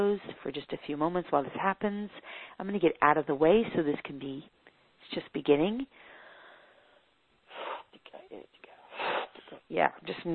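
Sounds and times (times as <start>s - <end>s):
speech: 0.0s - 6.1s, 8.1s - 8.6s, 9.6s - 10.3s
deep breathy inhale through the nose: 6.0s - 7.9s.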